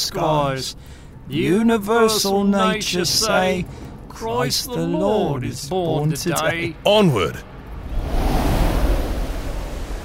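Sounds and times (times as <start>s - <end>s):
speech: 0.1s - 7.5s
sea waves heaving and surging: 7.5s - 10.0s.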